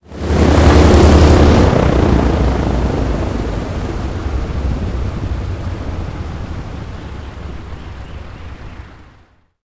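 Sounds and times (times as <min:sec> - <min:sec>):
engine stopping: 0:00.3 - 0:09.5.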